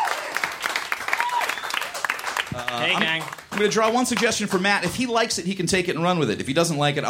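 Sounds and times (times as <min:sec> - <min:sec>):
audience applause for a performer being introduced: 0:00.0 - 0:04.9
speech: 0:02.6 - 0:07.0.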